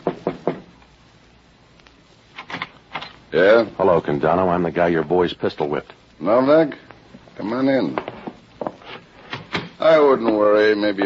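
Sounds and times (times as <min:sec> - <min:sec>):
knocks on a wooden office door: 0:00.0 - 0:00.7
speech: 0:03.3 - 0:06.8, 0:07.4 - 0:08.1, 0:09.9 - 0:11.0.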